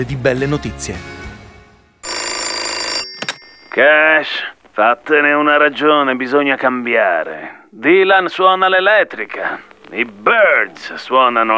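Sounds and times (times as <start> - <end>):
speech: 0.0 - 1.2, 3.8 - 11.5
telephone bell ringing: 2.0 - 4.6.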